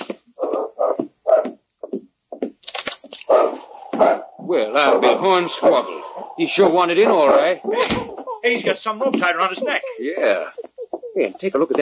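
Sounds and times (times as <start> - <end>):
dog at a cabin door barking: 0.4 - 1.6, 3.2 - 5.8, 6.5 - 8.1
speech: 4.0 - 10.6, 11.2 - 11.8.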